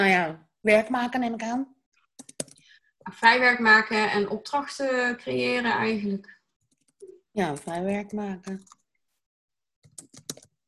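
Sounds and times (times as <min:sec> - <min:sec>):
speech: 0:00.0 - 0:01.7, 0:03.0 - 0:06.4, 0:07.4 - 0:08.8
keystrokes on a computer keyboard: 0:02.2 - 0:02.6, 0:08.5 - 0:08.8, 0:09.8 - 0:10.6.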